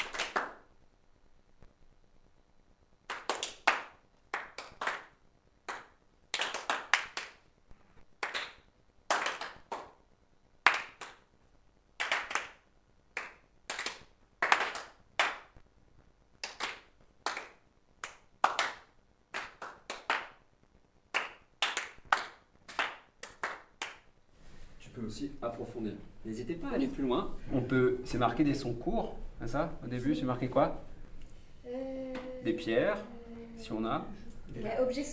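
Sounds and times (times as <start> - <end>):
hands clapping and tapping in a group exercise: 0.0 - 0.7, 3.1 - 7.4, 8.2 - 10.0, 10.6 - 11.3, 12.0 - 12.6, 13.2 - 15.6, 16.4 - 20.4, 21.1 - 24.1
speech: 25.0 - 30.9, 32.4 - 35.1.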